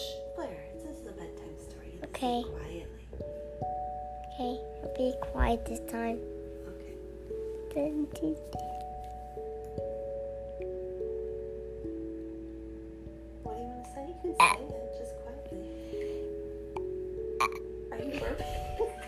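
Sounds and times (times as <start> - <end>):
steady soft musical tone: 0.0 - 19.0
speech: 2.2 - 2.7, 4.4 - 6.4, 7.7 - 8.7
child burping: 14.4 - 14.6, 17.4 - 17.7.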